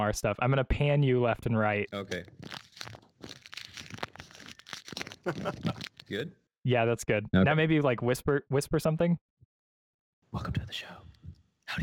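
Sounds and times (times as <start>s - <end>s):
speech: 0.0s - 2.6s, 5.2s - 9.4s, 10.3s - 11.1s, 11.7s - 11.8s
snack wrapper crinkling held up to the microphone: 1.9s - 6.3s.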